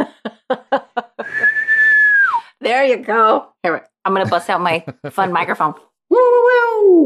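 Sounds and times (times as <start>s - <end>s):
laughter: 0.0s - 1.6s, 4.2s - 5.6s
high-pitched celebratory whistle: 1.2s - 2.5s
speech: 2.7s - 6.3s.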